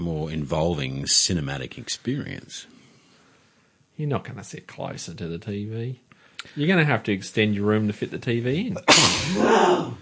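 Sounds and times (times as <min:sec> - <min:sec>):
speech: 0:00.1 - 0:02.8, 0:04.0 - 0:10.0
loud sneeze: 0:08.9 - 0:10.0.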